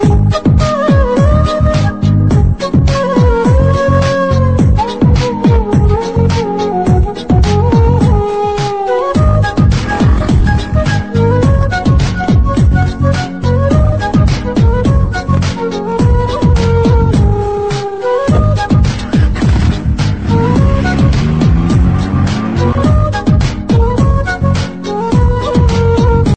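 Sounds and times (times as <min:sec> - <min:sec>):
kushi flute: 0:00.0 - 0:26.3.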